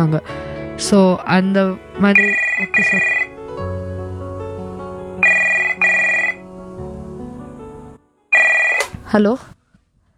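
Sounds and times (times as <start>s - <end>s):
speech: 0.0s - 3.7s, 9.1s - 9.6s
sustained tonal bed: 0.0s - 9.6s
telephone ringing for an incoming listener call: 2.0s - 3.3s, 5.2s - 6.4s, 8.4s - 9.2s.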